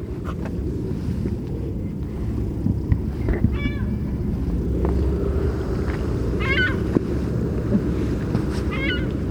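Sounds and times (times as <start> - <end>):
low rumbling wind: 0.0 - 9.2
California gull giving harmonic mewing calls: 6.4 - 6.9, 8.7 - 9.2.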